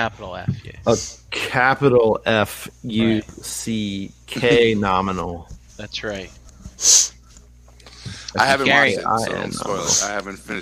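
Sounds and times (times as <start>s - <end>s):
speech: 0.0s - 7.2s, 8.0s - 10.5s
sharp hissy sneeze: 6.8s - 7.2s.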